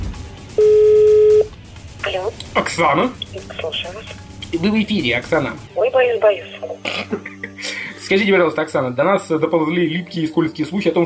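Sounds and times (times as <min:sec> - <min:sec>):
telephone ringback tone while placing a call during a live broadcast: 0:00.6 - 0:01.5
speech: 0:02.6 - 0:11.0.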